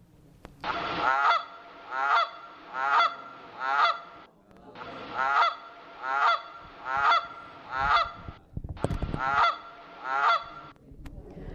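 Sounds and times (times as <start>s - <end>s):
Canada goose honking: 0.6s - 4.3s, 5.0s - 8.4s, 9.2s - 10.7s.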